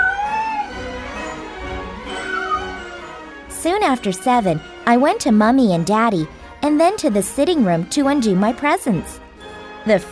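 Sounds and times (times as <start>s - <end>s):
cat meowing: 0.0s - 1.0s, 2.1s - 2.8s
speech: 3.6s - 9.2s, 9.8s - 10.0s.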